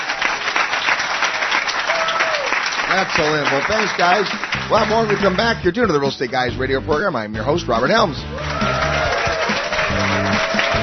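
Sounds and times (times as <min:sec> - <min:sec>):
audience applause: 0:00.0 - 0:05.6, 0:08.2 - 0:10.8
speech: 0:02.9 - 0:08.8.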